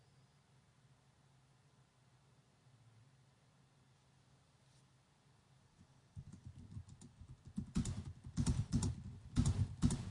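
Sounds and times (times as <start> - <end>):
rapid typing on a computer keyboard: 6.2 - 10.0.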